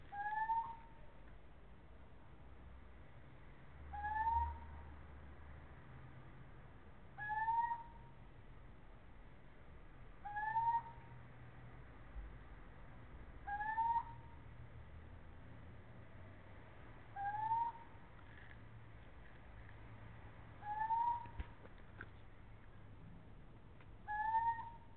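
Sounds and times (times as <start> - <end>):
male little owl Athene noctua calling: 0.1 - 1.0, 3.9 - 4.7, 7.2 - 8.1, 10.2 - 11.2, 13.4 - 14.4, 17.1 - 18.0, 20.6 - 21.5, 24.0 - 24.9.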